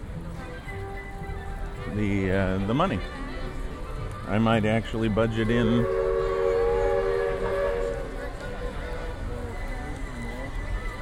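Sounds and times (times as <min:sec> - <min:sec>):
theme park railroad train rumbling: 0:00.0 - 0:10.9
speech: 0:02.0 - 0:03.2, 0:04.3 - 0:06.0
theme park railroad train whistle: 0:05.6 - 0:09.0.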